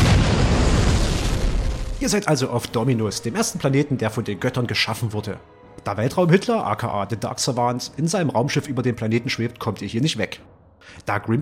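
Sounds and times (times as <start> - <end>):
explosion sound effect with deep booming rumble: 0.0 - 2.1
crackling debris noise: 0.0 - 2.4
speech: 2.0 - 11.4.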